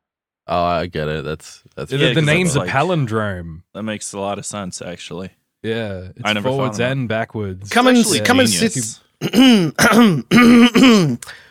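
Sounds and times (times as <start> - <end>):
speech: 0.5 - 11.5
quick loud throaty coughs: 9.2 - 11.2.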